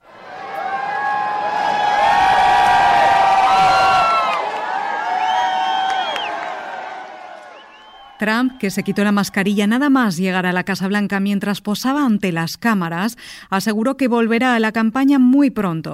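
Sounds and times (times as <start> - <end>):
crowd of supporters cheering and whooping: 0.0 - 9.6
excited shouts: 0.2 - 9.6
applause: 0.3 - 9.4
speech: 8.2 - 15.9.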